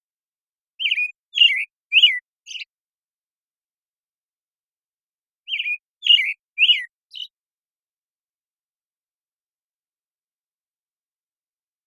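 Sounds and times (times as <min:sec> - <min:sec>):
American robin Turdus migratorius morning song in Washington: 0:00.8 - 0:02.7, 0:05.4 - 0:07.4.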